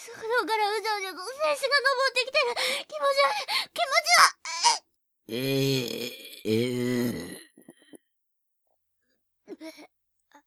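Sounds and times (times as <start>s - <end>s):
speech: 0.1s - 3.7s, 5.3s - 6.8s
person burping: 5.3s - 8.0s.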